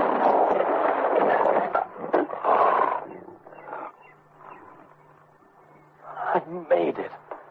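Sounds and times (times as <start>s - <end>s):
lion roaring as it pounces: 0.0s - 4.9s
speech: 6.5s - 7.2s.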